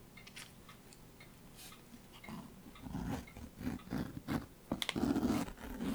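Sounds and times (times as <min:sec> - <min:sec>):
zipper being unzipped on a worn Bible cover with a cross pull: 0:04.0 - 0:05.9.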